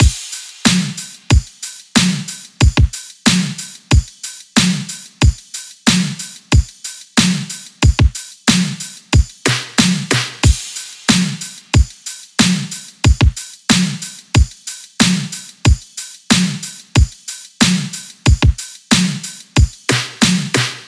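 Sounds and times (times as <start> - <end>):
full drum loop: 0.0 - 20.8.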